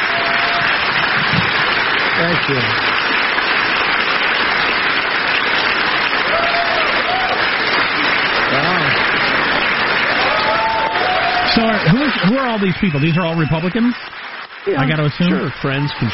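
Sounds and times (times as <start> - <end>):
large crowd applauding at a gathering: 0.0 - 16.1
speech: 2.3 - 2.9, 11.8 - 16.1
whistles: 11.9 - 13.7.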